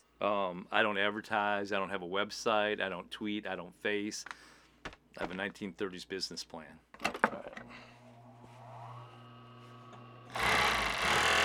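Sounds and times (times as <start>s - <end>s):
speech: 0.2s - 4.5s, 5.2s - 7.1s
old sewing machine running: 10.3s - 11.4s.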